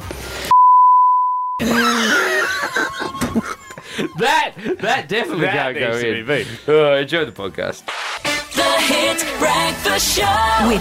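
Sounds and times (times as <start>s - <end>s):
loud steady high-pitched censor bleep: 0.5s - 1.6s
people groaning and laughing: 1.6s - 5.7s
speech: 4.1s - 8.0s, 9.1s - 10.8s.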